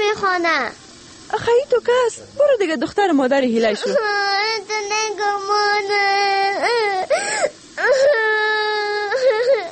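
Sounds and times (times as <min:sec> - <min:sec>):
speech: 0:00.1 - 0:08.2
daughter crying and wailing in distressed sobbing bursts: 0:03.8 - 0:04.7, 0:05.8 - 0:09.6.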